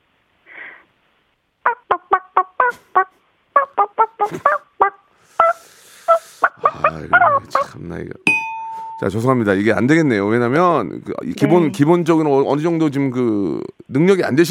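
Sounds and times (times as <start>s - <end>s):
person imitating a chicken clucking loudly: 1.7s - 7.8s
speech: 4.2s - 4.6s, 7.0s - 8.4s, 9.0s - 14.5s
soft breathy sound: 5.1s - 6.9s.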